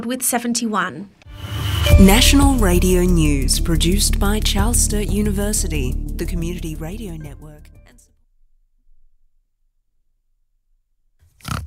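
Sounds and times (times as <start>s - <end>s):
speech: 0.0s - 7.4s
quiet low hum: 1.3s - 7.9s.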